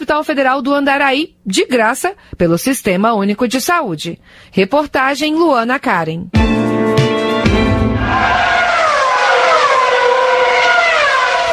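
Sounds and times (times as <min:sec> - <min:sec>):
speech: 0:00.1 - 0:07.1
Formula 1 race car engines roaring as cars speed past: 0:08.0 - 0:11.5.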